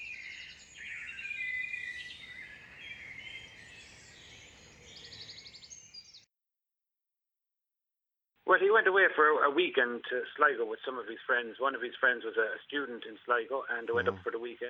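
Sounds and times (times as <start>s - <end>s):
dawn chorus of many birds singing: 0.0s - 6.3s
speech: 8.6s - 14.6s.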